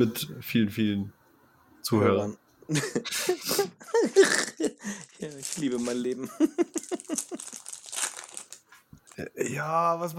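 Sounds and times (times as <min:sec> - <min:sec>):
speech: 0:00.0 - 0:01.2, 0:01.8 - 0:07.8, 0:09.2 - 0:10.1
laughter: 0:02.7 - 0:05.0, 0:06.2 - 0:07.6
chips bag crinkling: 0:04.9 - 0:08.7.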